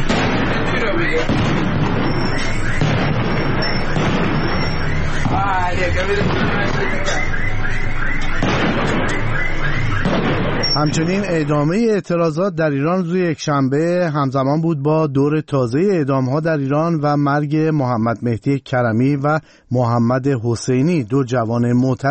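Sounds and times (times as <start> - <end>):
continuous gunfire: 0.0 - 11.6
explosions: 0.0 - 11.8
speech: 1.0 - 1.6, 5.8 - 7.4, 10.8 - 22.0.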